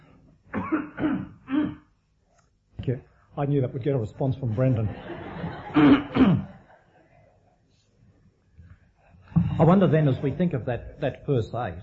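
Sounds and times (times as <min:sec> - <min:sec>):
harsh coughs with a throaty phlegmy rasp: 0:00.5 - 0:01.9, 0:05.7 - 0:06.5
speech: 0:02.9 - 0:06.5, 0:09.6 - 0:11.8
laughter: 0:04.5 - 0:07.4.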